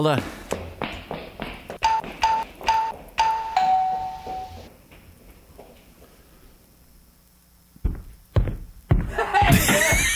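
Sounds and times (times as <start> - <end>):
speech: 0.0 - 0.4
doorbell chime: 1.8 - 4.7
laughter: 9.1 - 10.1.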